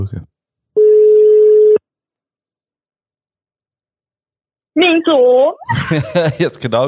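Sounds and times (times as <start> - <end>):
speech: 0.0 - 0.3, 4.8 - 6.8
electronic telephone ringback tone while calling: 0.8 - 1.8
laughter: 5.7 - 6.8.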